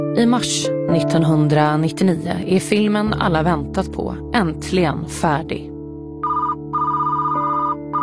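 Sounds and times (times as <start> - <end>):
speech: 0.1 - 5.7
telephone ringing in electronic bursts: 6.3 - 8.0.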